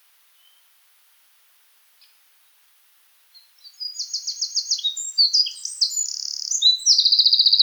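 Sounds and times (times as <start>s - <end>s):
Eurasian wren Troglodytes troglodytes song with trills: 3.7s - 7.6s.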